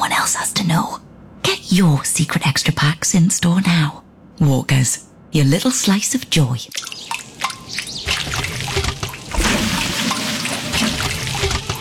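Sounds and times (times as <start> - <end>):
speech: 1.7 - 7.2
water pouring and trickling: 6.7 - 11.7.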